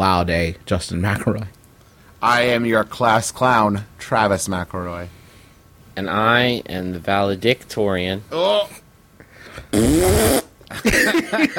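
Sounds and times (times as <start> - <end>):
speech: 0.0 - 1.6, 2.2 - 5.2, 6.0 - 8.8, 9.6 - 11.5
loud buzzy fart sound effect: 9.7 - 10.6
laughter: 10.7 - 11.5.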